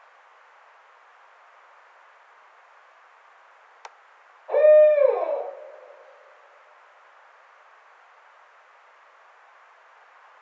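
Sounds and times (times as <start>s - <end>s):
barred owl giving a deep hoot: 4.5s - 6.3s.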